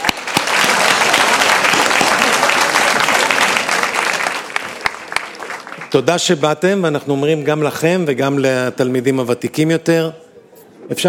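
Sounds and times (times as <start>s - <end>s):
audience clapping: 0.0s - 6.4s
speech: 5.9s - 10.2s, 10.9s - 11.0s.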